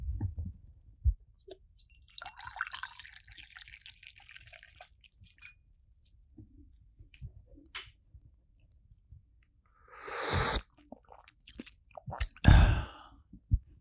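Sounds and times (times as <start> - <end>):
vanilla red tea pouring into a cup: 2.0 - 5.7
slurping sips of tea: 9.8 - 13.0.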